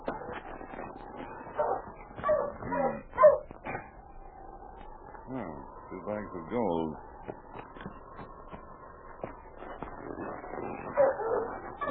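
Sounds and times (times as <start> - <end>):
sled dogs of a dog-sled team barking and whimpering: 1.1 - 4.0, 10.2 - 11.8
speech: 6.2 - 7.4.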